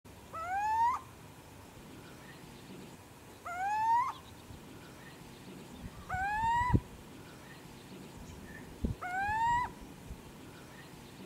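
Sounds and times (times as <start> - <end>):
male little owl singing: 0.3 - 1.1, 3.4 - 4.3, 5.9 - 6.9, 8.4 - 9.8.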